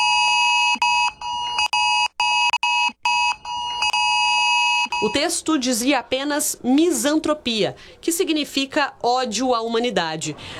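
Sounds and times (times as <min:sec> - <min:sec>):
fake phone emergency extreme alert tone sent by a hacker attack: 0:00.0 - 0:05.3
speech: 0:05.0 - 0:10.5.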